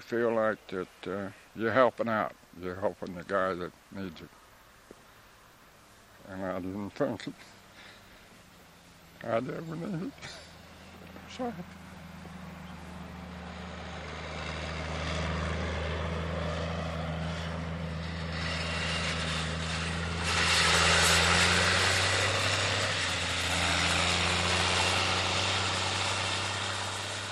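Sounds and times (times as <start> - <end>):
speech: 0.0 - 4.4, 6.3 - 7.6, 9.2 - 10.4, 11.3 - 11.8
four-wheel drive tractor pulling a field cultivator: 5.8 - 27.3.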